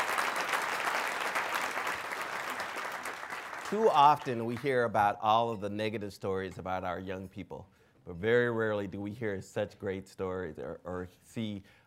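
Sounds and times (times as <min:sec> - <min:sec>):
audience applause at an afternoon library annual address: 0:00.0 - 0:04.6
speech: 0:03.7 - 0:11.8.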